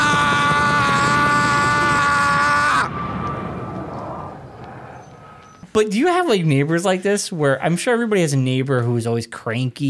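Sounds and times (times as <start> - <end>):
helicopter engine whine and rotor hum: 0.0 - 5.6
speech: 5.8 - 9.8.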